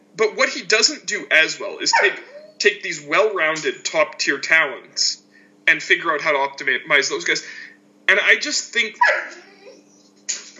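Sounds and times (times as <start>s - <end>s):
low steady hum: 0.0s - 10.5s
speech: 0.2s - 9.5s
dog barking: 1.9s - 2.5s, 9.0s - 9.8s.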